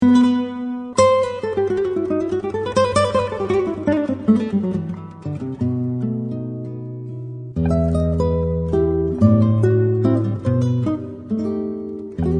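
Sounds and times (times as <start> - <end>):
flamenco music: 0.0 - 12.3.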